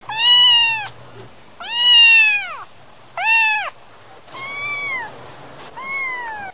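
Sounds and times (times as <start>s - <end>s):
kitten meowing: 0.1s - 1.0s, 1.6s - 5.1s, 5.8s - 6.5s.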